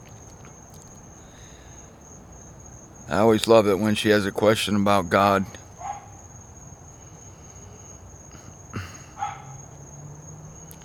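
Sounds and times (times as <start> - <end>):
crickets chirping through the night air: 0.0 - 10.8
speech: 3.1 - 5.6
dog barking: 5.8 - 6.2, 9.2 - 9.6.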